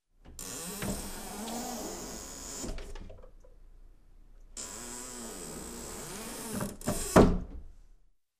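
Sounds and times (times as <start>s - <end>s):
door opening and closing: 0.3s - 3.2s, 4.6s - 7.7s.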